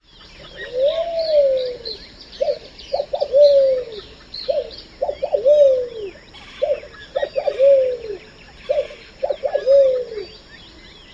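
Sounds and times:
red-billed pigeon cooing: 0.5s - 10.4s.

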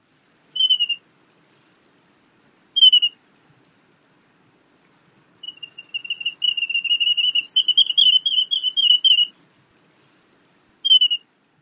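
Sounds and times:
wandering tattler calling: 0.0s - 1.0s, 2.8s - 3.2s, 5.4s - 9.8s, 10.8s - 11.3s.

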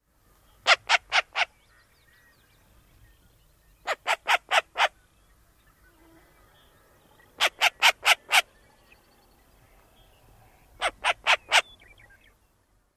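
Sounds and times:
Short-eared Owl alarm calls near nest: 0.6s - 1.8s, 3.8s - 5.0s, 7.2s - 8.6s, 10.7s - 11.9s.

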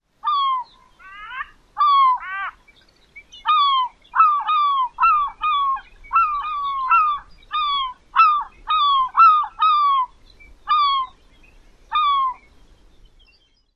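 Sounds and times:
Glaucous Gull calls: 0.2s - 2.6s, 3.5s - 11.2s, 11.9s - 12.4s.

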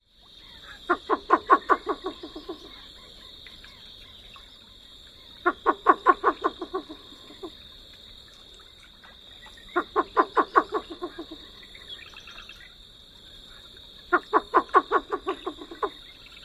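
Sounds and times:
least bittern chuckling call: 0.6s - 3.2s, 5.3s - 7.6s, 9.6s - 11.7s, 14.1s - 16.3s.

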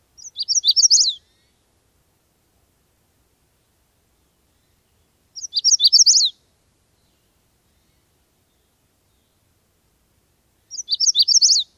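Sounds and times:
Magnolia Warbler singing: 0.2s - 1.6s, 4.1s - 9.5s, 10.6s - 11.7s.

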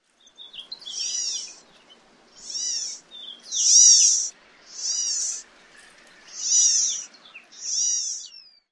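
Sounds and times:
California Gnatcatcher calling: 0.8s - 1.7s, 2.4s - 5.5s, 6.3s - 8.4s.

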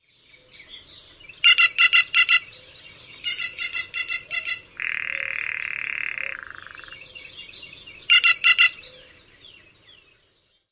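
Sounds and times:
Green Jay piping calls: 0.4s - 9.2s.

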